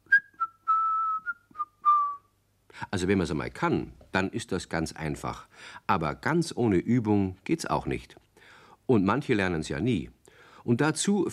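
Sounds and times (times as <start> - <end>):
person whistling a short high tune: 0.0 - 2.3
speech: 2.9 - 8.2, 8.9 - 11.3.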